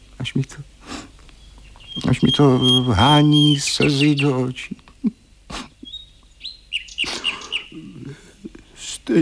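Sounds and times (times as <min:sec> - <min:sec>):
speech: 0:00.2 - 0:00.8, 0:02.0 - 0:05.6
small songbird singing: 0:01.2 - 0:08.1.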